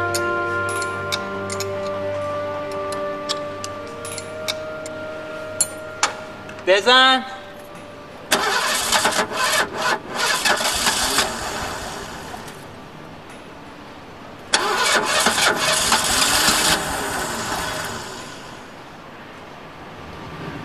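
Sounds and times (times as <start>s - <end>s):
car engine cranking, failing to start: 0.2s - 5.0s, 8.3s - 12.7s, 14.5s - 18.8s
speech: 6.8s - 7.3s.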